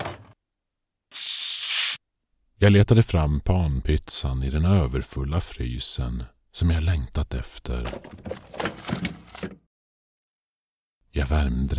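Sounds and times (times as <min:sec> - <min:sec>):
large cola bottle opening with fizzing hiss: 0:01.1 - 0:02.0
speech: 0:02.6 - 0:09.5, 0:11.1 - 0:11.7.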